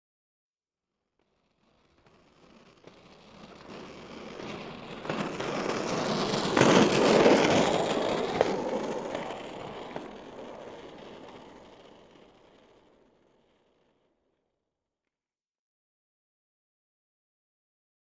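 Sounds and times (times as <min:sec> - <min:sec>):
rollerblades passing by: 0:01.2 - 0:14.4.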